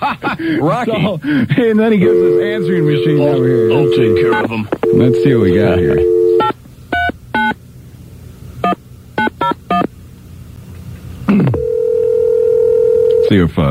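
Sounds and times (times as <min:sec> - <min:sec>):
speech: 0:00.0 - 0:06.2, 0:13.3 - 0:13.6
faint hum: 0:00.0 - 0:13.6
steady sustained phone tone: 0:02.0 - 0:06.5, 0:11.4 - 0:13.4
touch-tone telephone dialing keypad beeps: 0:02.1 - 0:07.5.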